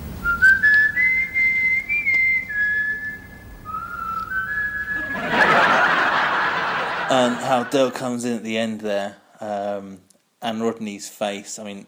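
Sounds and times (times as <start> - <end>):
person whistling a wavering tune: 0.2 - 5.4
burst of laughter: 5.0 - 8.0
speech: 7.1 - 11.8.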